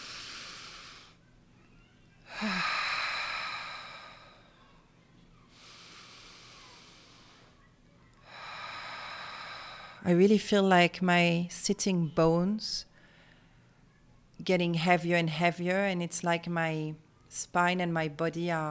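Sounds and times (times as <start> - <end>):
slow deep breaths drawn in during a guided relaxation exercise: 0.0 - 1.2, 2.3 - 4.8, 5.5 - 7.6, 8.2 - 10.0
speech: 10.0 - 12.9, 14.4 - 18.6.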